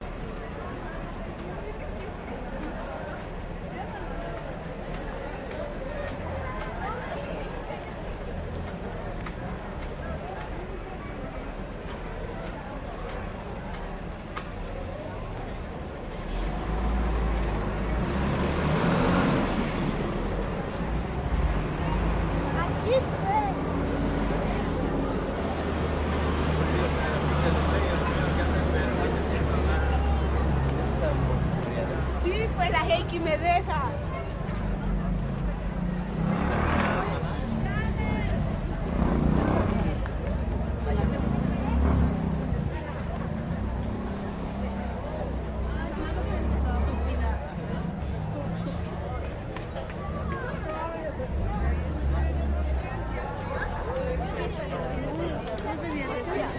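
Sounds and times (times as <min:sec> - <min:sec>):
street traffic: 0:00.0 - 0:56.5
walla of people chatting: 0:00.0 - 0:56.5.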